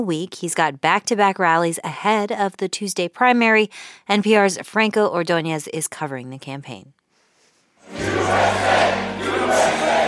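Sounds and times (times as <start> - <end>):
speech: 0.0 - 7.0
crowd cheering at a political rally in New Hampshire: 7.8 - 10.0.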